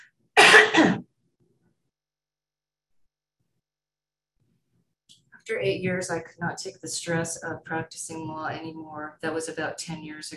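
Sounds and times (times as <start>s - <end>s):
person coughing: 0.4s - 1.1s
speech: 5.4s - 10.3s.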